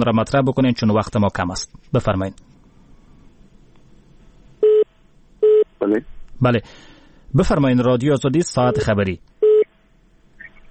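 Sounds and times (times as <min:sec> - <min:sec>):
speech: 0:00.0 - 0:02.5, 0:05.8 - 0:09.3
telephone line tone after a dropped call: 0:04.6 - 0:05.7, 0:08.7 - 0:09.7.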